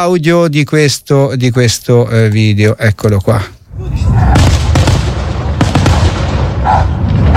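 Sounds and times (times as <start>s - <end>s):
speech: 0.0s - 4.5s
fireworks exploding with sharp bangs: 4.3s - 7.3s.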